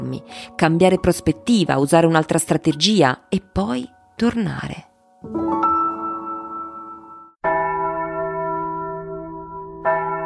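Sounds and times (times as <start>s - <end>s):
speech: 0.1s - 5.6s
church bells ringing: 6.1s - 10.2s.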